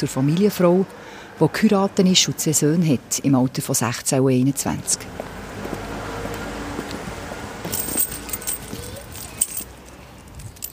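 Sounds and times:
speech: 0.0 - 5.4
steady outdoor rumble and hiss: 0.0 - 10.7
keys jangling: 7.7 - 10.7.

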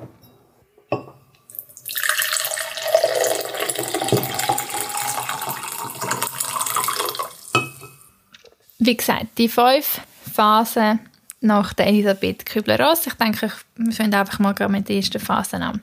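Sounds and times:
soft clink of crockery: 0.2 - 1.4, 6.0 - 8.1
tea pouring into a cup: 1.5 - 7.6
speech: 8.8 - 15.8.

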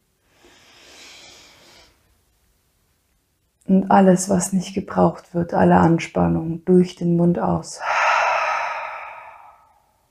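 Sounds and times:
deep inhale through the nose: 0.2 - 2.1, 7.8 - 10.0
speech: 3.7 - 8.0.

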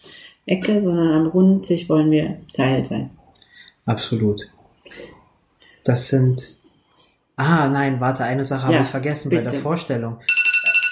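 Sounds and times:
speech: 0.5 - 3.2, 3.9 - 5.1, 5.8 - 6.6, 7.4 - 10.4
alarm clock ringing with shrill electronic tone: 10.2 - 10.8.

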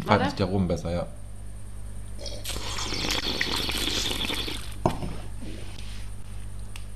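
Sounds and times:
steady low hum: 0.0 - 6.9
speech: 0.1 - 1.2
slurping a drink: 2.2 - 4.8.

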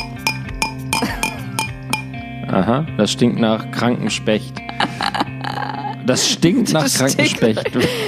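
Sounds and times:
shot glass clinking on stone: 0.0 - 2.2
speech: 2.5 - 4.9, 6.1 - 8.0
laughter: 4.6 - 8.0.

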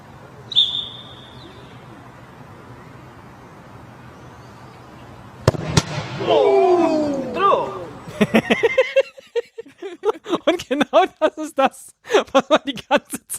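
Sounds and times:
low noise: 0.0 - 13.3
referee's whistle blowing for kickoff: 0.5 - 1.6
sharp loud bangs: 5.4 - 6.3
laughter: 8.1 - 13.3
speech: 11.4 - 13.1.

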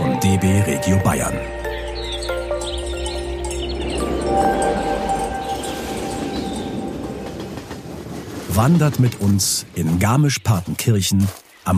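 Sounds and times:
speech: 0.3 - 1.7, 8.6 - 11.7
train rumbling along rails: 3.0 - 10.2.

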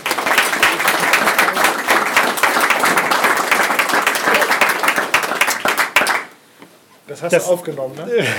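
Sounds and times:
crowd applauding to welcome a guest: 0.0 - 6.4
speech: 7.2 - 8.3.

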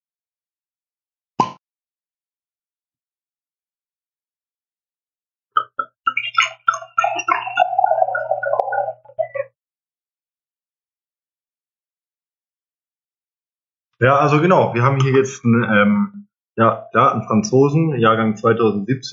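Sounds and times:
cork popping: 1.4 - 1.6, 5.6 - 9.4
speech: 14.0 - 19.1.

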